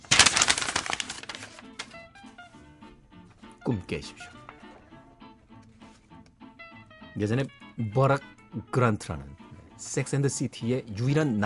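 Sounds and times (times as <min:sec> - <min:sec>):
paper letter being crumpled up: 0:00.0 - 0:02.0
speech: 0:03.7 - 0:04.4, 0:07.2 - 0:11.4.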